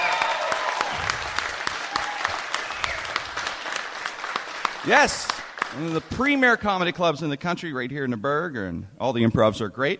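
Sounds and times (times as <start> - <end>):
audience applause at a comedy club in Pittsburgh: 0.0 - 6.5
speech: 4.8 - 9.9.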